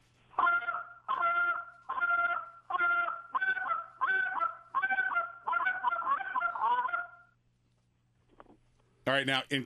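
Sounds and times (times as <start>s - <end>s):
goose call blown in sharp clipped honks as a comeback call: 0.4s - 7.3s
speech: 9.1s - 9.6s.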